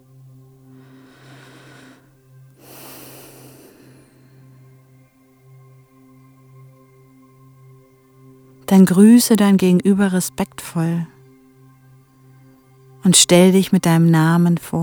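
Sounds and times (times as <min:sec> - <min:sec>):
quiet sustained musical drone: 0:00.0 - 0:14.8
deep deliberate breathing during a guided mindfulness exercise: 0:00.6 - 0:05.3
speech: 0:08.7 - 0:11.1, 0:13.0 - 0:14.8.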